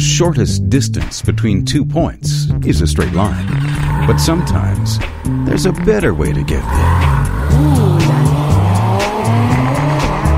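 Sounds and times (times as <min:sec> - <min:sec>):
speech: 0:00.2 - 0:07.9
Porsche 911 sports car engine revving hard: 0:03.0 - 0:10.3
Porsche 911 tires squealing: 0:03.0 - 0:10.3.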